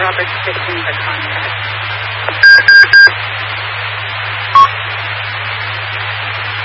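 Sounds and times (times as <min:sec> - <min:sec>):
steady low hum: 0:00.0 - 0:06.6
radio timer electronic alarm beeps: 0:02.4 - 0:03.1.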